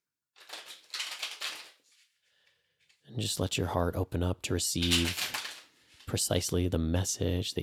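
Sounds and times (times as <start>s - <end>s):
deck of tarot cards being shuffled: 0.4s - 2.1s, 4.8s - 6.1s
speech: 3.1s - 5.4s, 6.1s - 7.6s.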